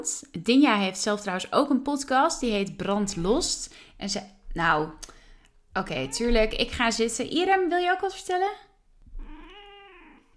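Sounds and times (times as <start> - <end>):
speech: 0.0 - 5.2, 5.8 - 8.7
cat meowing for attention: 9.1 - 10.3.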